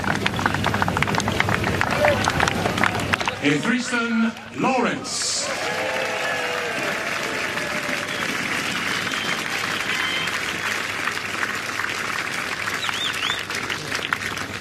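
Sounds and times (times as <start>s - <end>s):
large crowd clapping: 0.0s - 14.6s
speech: 3.4s - 6.2s
crowd whistles: 7.9s - 10.8s, 12.7s - 13.5s.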